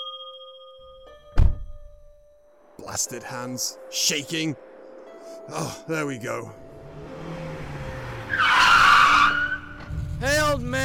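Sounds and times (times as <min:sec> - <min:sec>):
speech: 0:02.8 - 0:07.1
car skidding with tire screech, driven recklessly by drinking kids: 0:06.8 - 0:10.0.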